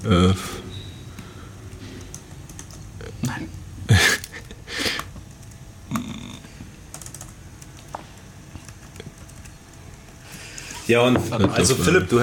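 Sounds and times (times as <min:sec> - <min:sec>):
speech: 0:00.0 - 0:00.6, 0:10.9 - 0:12.2
computer keyboard typing: 0:01.7 - 0:02.9, 0:04.2 - 0:06.0, 0:06.9 - 0:09.8.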